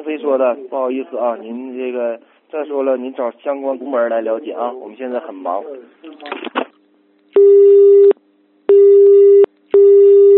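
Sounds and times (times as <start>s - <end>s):
speech: 0.2s - 6.5s, 7.4s - 7.9s
telephone busy tone on unanswered call to copper mining company: 7.4s - 10.3s.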